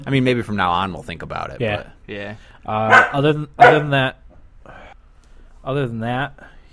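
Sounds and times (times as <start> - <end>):
speech: 0.0 - 4.2, 5.6 - 6.7
person imitating a dog's woofs: 2.9 - 4.0.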